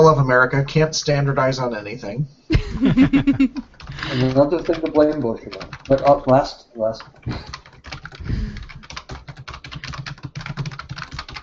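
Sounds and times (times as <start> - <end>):
speech: 0.0 - 7.6
laughter: 2.5 - 5.2, 7.2 - 7.6
fast typing on a computer keyboard: 3.3 - 11.4.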